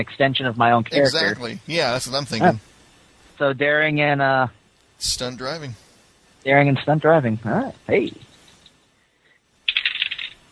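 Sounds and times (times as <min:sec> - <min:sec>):
speech: 0:00.0 - 0:02.7, 0:03.4 - 0:05.8, 0:06.4 - 0:08.3
dice rolling during a tabletop role-playing game: 0:09.7 - 0:10.4.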